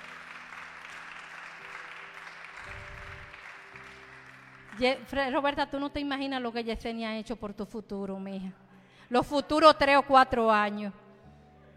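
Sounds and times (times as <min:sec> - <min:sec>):
audience applause: 0:00.0 - 0:05.1
speech: 0:04.8 - 0:11.0.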